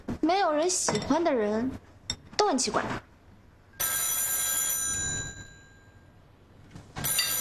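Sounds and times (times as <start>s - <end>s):
people talking: 0.2s - 1.8s, 2.4s - 3.0s
telephone ringing loudly: 3.8s - 6.1s, 7.0s - 7.4s.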